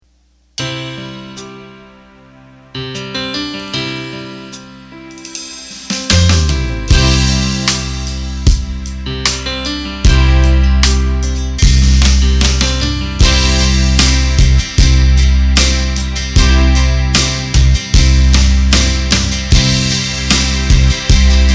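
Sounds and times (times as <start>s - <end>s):
drum machine eight-beat rhythm: 5.2s - 21.5s.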